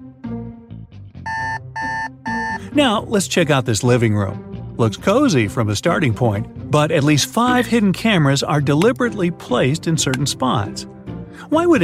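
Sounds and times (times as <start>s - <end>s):
alarm clock ringing with shrill electronic beeps: 1.3s - 2.6s
speech: 2.8s - 11.8s.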